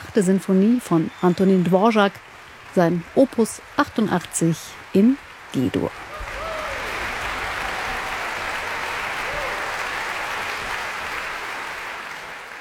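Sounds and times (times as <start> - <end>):
speech: 0.2 - 6.0
large concert audience applause in the Max-Littmann-Saal after a symphony: 6.0 - 12.5
faint whistles or cheers: 6.2 - 10.9.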